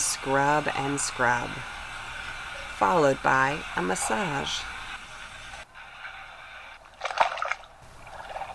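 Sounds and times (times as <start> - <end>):
speech: 0.2 - 1.8, 2.8 - 4.7
water trickling and sloshing in a Turkish bath: 6.8 - 8.5.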